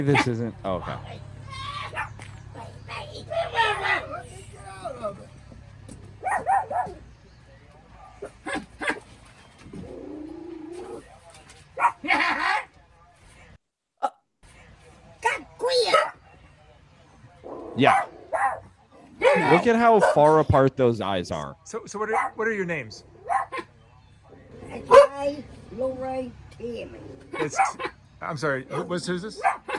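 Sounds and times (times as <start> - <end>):
speech: 0.0 - 1.3, 17.8 - 18.1, 19.3 - 23.1, 24.8 - 29.7
dog barking: 1.8 - 4.1, 6.2 - 7.0, 7.9 - 9.1, 11.8 - 12.7, 15.8 - 16.2, 17.5 - 20.4, 22.1 - 22.4, 23.2 - 23.8, 24.6 - 25.3, 27.3 - 28.0, 28.7 - 29.7.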